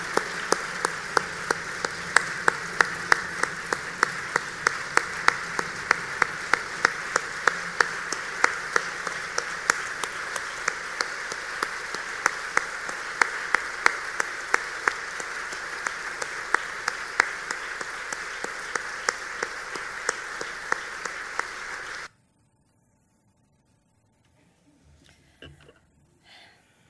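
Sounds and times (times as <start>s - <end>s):
audience applause: 0.0s - 22.1s.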